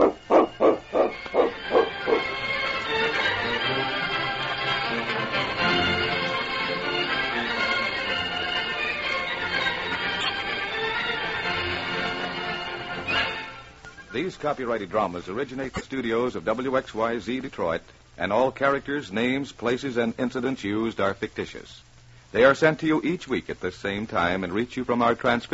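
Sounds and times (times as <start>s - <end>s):
dog barking: 0.0s - 2.3s
sustained music: 0.0s - 14.8s
speech: 14.4s - 25.5s.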